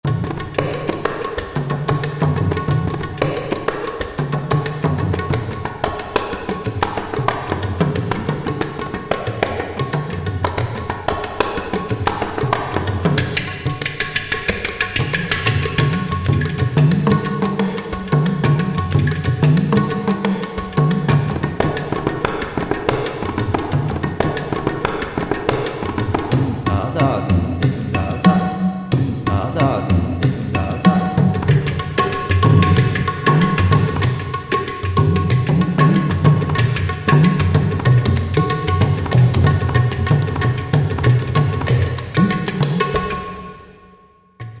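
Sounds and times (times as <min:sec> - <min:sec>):
Indian percussion ensemble: 0:00.0 - 0:44.5.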